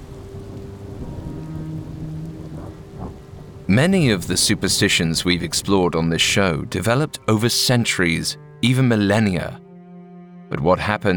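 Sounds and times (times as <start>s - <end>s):
rain on a car windshield: 0.0s - 4.9s
low droning rumble: 0.0s - 7.1s
speech: 3.7s - 9.6s, 10.5s - 11.1s.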